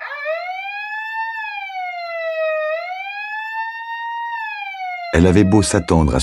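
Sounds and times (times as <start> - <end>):
loud piercing alarm siren wailing: 0.0 - 6.2
speech: 5.1 - 6.2.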